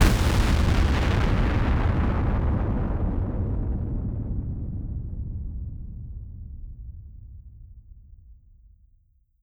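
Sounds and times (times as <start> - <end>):
large explosion: 0.0 - 6.4.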